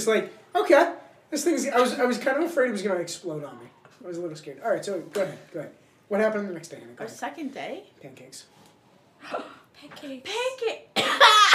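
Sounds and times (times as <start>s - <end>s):
speech: 0.0s - 8.6s, 9.2s - 11.5s
person coughing: 11.0s - 11.5s.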